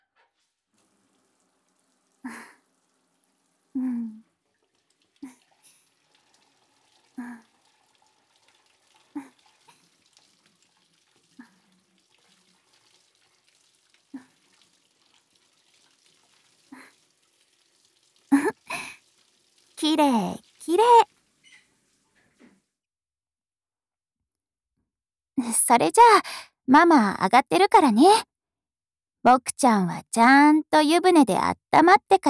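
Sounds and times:
water rinsing shampoo off a child in the bath: 0.7s - 22.7s
speech: 19.8s - 21.1s, 25.7s - 28.3s, 29.2s - 32.2s.

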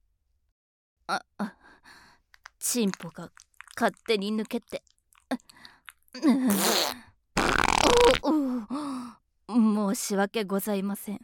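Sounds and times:
speech: 1.1s - 1.6s, 2.6s - 5.4s, 6.2s - 7.0s, 8.0s - 11.2s
fart: 6.5s - 8.2s.

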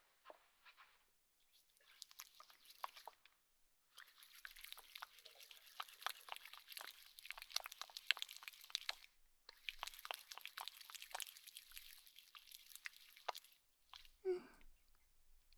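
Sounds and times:
hands lathering shampoo into foam: 1.9s - 3.2s, 4.0s - 14.2s.

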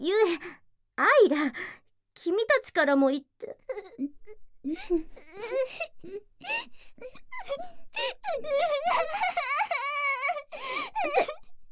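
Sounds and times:
speech: 1.3s - 9.5s
person crying and sobbing: 3.4s - 11.6s.

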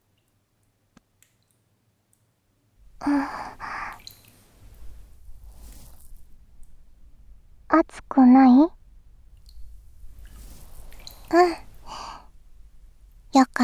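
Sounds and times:
damp rustling and squishing of a wet cloth: 2.8s - 7.6s, 8.8s - 13.4s
cloth with hot water rubbing ears: 2.9s - 7.4s, 9.4s - 13.4s
speech: 3.0s - 3.4s, 7.8s - 8.8s.

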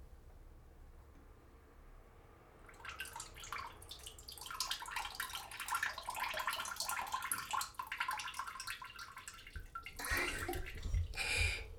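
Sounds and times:
splashing: 2.7s - 11.3s
seated person urinating into a toilet: 2.7s - 11.7s.

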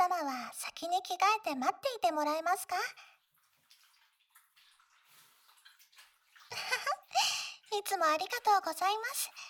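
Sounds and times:
speech: 0.5s - 3.1s, 6.5s - 9.4s
rush of running water while washing feet: 2.2s - 9.4s
faint splashing and trickling water: 3.2s - 9.4s.

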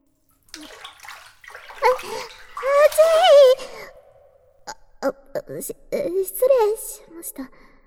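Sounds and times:
hot water scooped and poured into a small pail: 0.2s - 4.2s
water trickling and dripping: 0.2s - 4.8s
speech: 5.1s - 7.7s.

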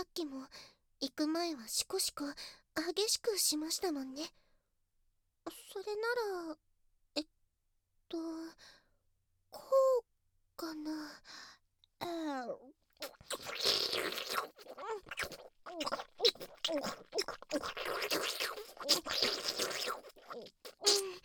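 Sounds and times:
speech: 0.0s - 4.4s, 5.5s - 6.6s, 8.1s - 8.8s, 9.5s - 21.2s
wet mouth slurping and sucking: 13.0s - 21.2s.

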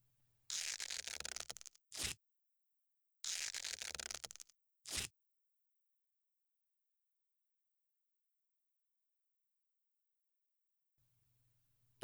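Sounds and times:
vinyl tape stripped off the roll: 0.5s - 2.2s, 3.3s - 5.1s.

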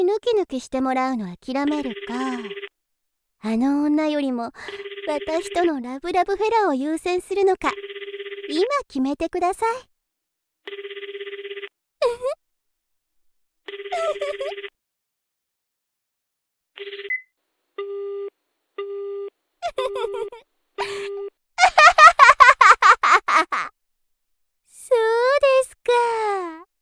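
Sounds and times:
speech: 0.0s - 2.7s, 3.4s - 7.9s, 8.5s - 9.9s, 10.6s - 10.9s, 13.9s - 14.8s, 16.8s - 17.2s, 17.8s - 21.8s, 23.2s - 23.8s, 24.9s - 26.7s
phone ringing with incoming call: 1.7s - 2.7s, 4.6s - 5.9s, 7.7s - 8.7s, 10.7s - 11.7s, 13.7s - 14.8s, 16.8s - 19.3s
laughter: 14.0s - 14.5s, 19.6s - 23.7s.

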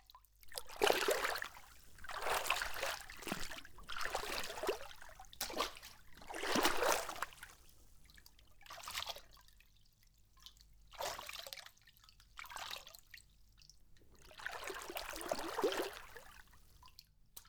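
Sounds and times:
hot bath water trickling and splashing: 0.5s - 9.0s, 13.8s - 16.9s.

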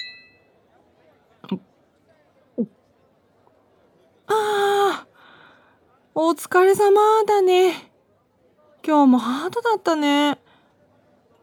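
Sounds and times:
glasses clinking together in a toast: 0.0s - 0.5s
quiet murmur: 0.0s - 11.4s
speech: 1.5s - 1.7s, 2.6s - 2.8s, 6.2s - 7.9s, 8.8s - 10.4s.

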